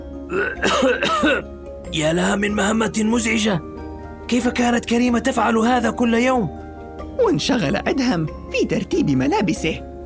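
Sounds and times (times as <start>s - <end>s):
rough throaty coughs from dust while dusting furniture: 0.3s - 1.5s
speech: 0.3s - 3.7s, 4.3s - 6.6s, 7.2s - 9.9s.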